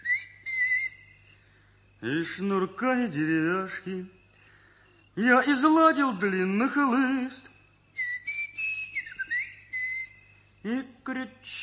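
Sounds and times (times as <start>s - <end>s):
long drawn-out human whistle: 0.0s - 1.5s, 7.0s - 10.6s
faint low hum: 0.0s - 11.6s
speech: 2.0s - 4.2s, 5.2s - 7.5s, 10.6s - 11.6s.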